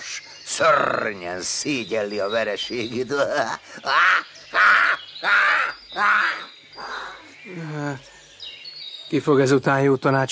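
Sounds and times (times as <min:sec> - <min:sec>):
speech: 0:00.6 - 0:05.4, 0:06.0 - 0:06.5, 0:07.4 - 0:08.1, 0:09.1 - 0:10.3
raven cawing harshly: 0:03.7 - 0:07.3.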